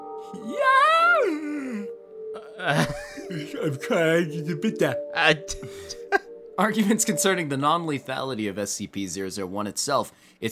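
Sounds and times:
person yawning: 0:00.1 - 0:03.6
speech: 0:00.3 - 0:00.7, 0:02.6 - 0:06.0, 0:06.6 - 0:10.5
laughter: 0:02.6 - 0:04.4.

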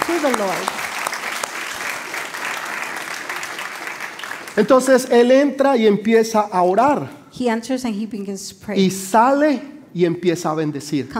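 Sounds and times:
congregation applauding: 0:00.0 - 0:05.3
speech: 0:00.1 - 0:00.9, 0:04.6 - 0:11.1.

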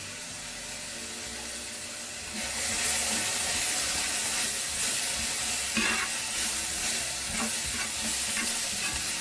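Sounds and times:
vegetables sizzling while frying in a pan: 0:00.0 - 0:09.1
scraping and clattering as frying vegetables are stirred in a pan: 0:04.7 - 0:09.1.

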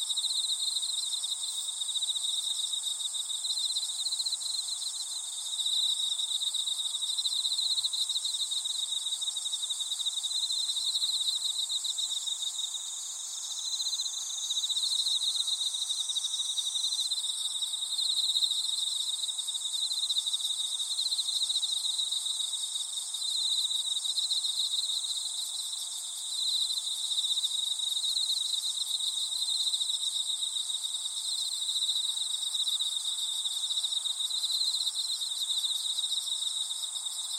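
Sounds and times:
insects calling from the grass: 0:00.0 - 0:37.3.

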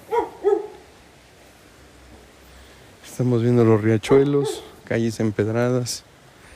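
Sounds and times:
dog barks: 0:00.0 - 0:00.9, 0:04.0 - 0:04.8
faint steady hiss: 0:00.0 - 0:06.5
speech: 0:03.2 - 0:06.1.

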